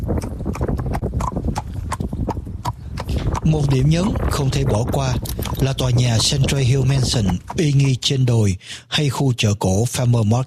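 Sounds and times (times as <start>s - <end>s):
low rumble of carriage wheels: 0.0s - 8.5s
horse-drawn carriage hooves clip-clopping: 0.0s - 8.6s
speech: 3.4s - 10.4s.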